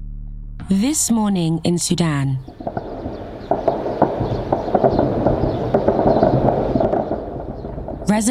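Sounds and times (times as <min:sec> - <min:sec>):
speech: 0:00.7 - 0:02.8
gunfire during armed clashes between the military and a paramilitary group in Khartoum Sudan: 0:02.5 - 0:08.2.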